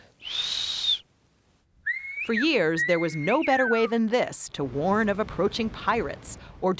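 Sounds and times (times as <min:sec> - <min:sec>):
breathy whistled phrases of the La Gomera whistled language across volcanic ravines: 0:00.2 - 0:01.1, 0:01.9 - 0:04.0
speech: 0:02.3 - 0:06.7.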